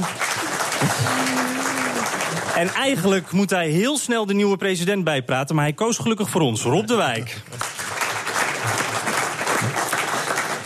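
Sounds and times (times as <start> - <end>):
large audience applauding in a packed hall: 0.0 - 3.7, 6.9 - 10.6
speech: 2.6 - 7.7.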